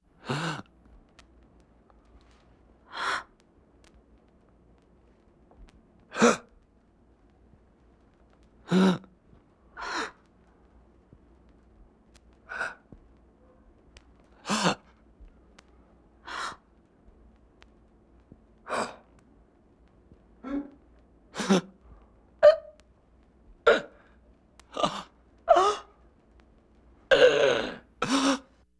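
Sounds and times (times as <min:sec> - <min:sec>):
person gasping: 0:00.2 - 0:00.7, 0:02.9 - 0:03.3, 0:06.1 - 0:06.5, 0:08.7 - 0:09.1, 0:09.8 - 0:10.2, 0:12.5 - 0:12.9, 0:14.4 - 0:14.9, 0:16.2 - 0:16.6, 0:18.7 - 0:19.1, 0:20.4 - 0:20.8, 0:21.4 - 0:21.8, 0:23.7 - 0:26.0, 0:27.1 - 0:28.6.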